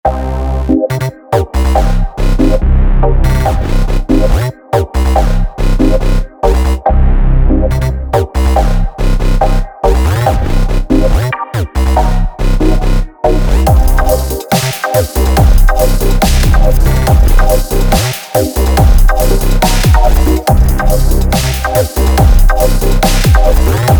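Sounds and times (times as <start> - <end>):
underground bass music: 0.0 - 23.9.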